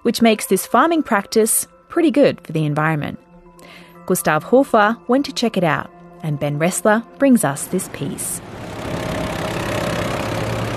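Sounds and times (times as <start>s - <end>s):
speech: 0.0s - 9.2s
boat engine idling in a harbour: 7.8s - 10.7s.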